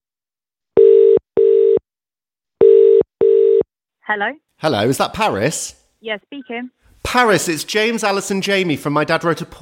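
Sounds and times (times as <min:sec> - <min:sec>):
pulsing telephone call tone after a number is dialed: 0:00.8 - 0:01.8, 0:02.6 - 0:03.7
speech: 0:04.1 - 0:09.5.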